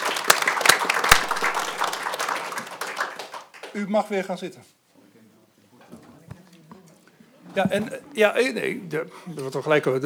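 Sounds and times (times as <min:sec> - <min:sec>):
room full of people applauding a new board member: 0:00.0 - 0:04.4
speech: 0:03.8 - 0:04.8, 0:07.6 - 0:10.0.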